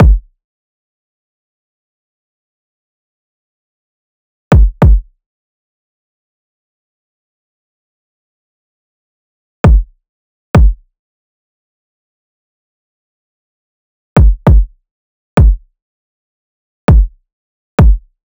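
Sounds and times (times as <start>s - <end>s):
kick drum loop: 0.0s - 0.3s, 4.5s - 5.1s, 9.6s - 9.9s, 10.6s - 10.8s, 14.2s - 14.7s, 15.4s - 15.6s, 16.9s - 17.2s, 17.8s - 18.1s.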